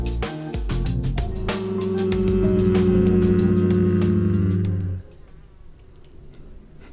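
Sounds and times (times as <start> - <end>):
housefly buzzing around the room: 1.2 - 5.0.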